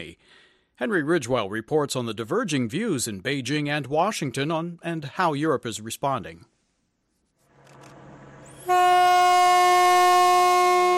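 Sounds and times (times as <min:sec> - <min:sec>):
speech: 0:00.0 - 0:06.5
freight train rumbling: 0:07.5 - 0:09.6
freight train horn blaring: 0:08.2 - 0:10.9.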